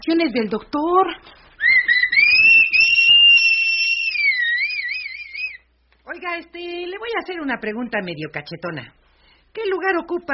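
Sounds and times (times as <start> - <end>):
speech: 0.1 - 1.4, 6.2 - 9.0, 9.6 - 10.3
person whistling a long shrill tone into someone's ears: 1.6 - 5.6.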